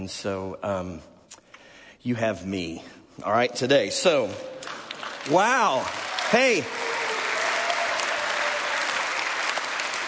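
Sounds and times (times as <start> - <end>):
speech: 0.0 - 1.1, 2.0 - 4.6, 5.2 - 6.9
audience applause: 4.6 - 10.0.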